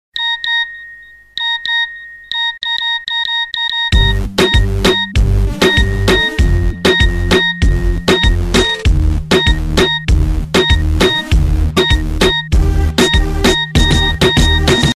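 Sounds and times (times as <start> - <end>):
incoming message ringtone remix: 0.2 - 14.9.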